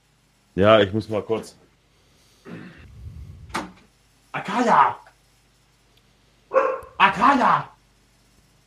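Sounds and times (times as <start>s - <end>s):
speech: 0.6s - 1.6s, 4.6s - 5.0s, 7.1s - 7.7s
dog barking: 6.5s - 7.2s.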